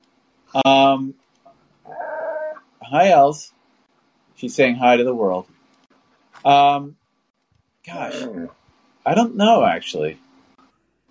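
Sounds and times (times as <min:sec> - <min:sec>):
speech: 0:00.5 - 0:01.2, 0:02.9 - 0:03.6, 0:04.4 - 0:05.5, 0:06.4 - 0:07.0, 0:07.8 - 0:10.2
dog whining howl: 0:01.9 - 0:02.6.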